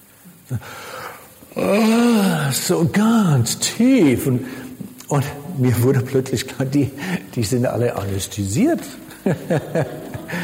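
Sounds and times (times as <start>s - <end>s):
speech: 0.5s - 10.4s
voice imitating the deep yawning of people during a prayer: 1.5s - 2.5s
laughter: 9.1s - 10.4s.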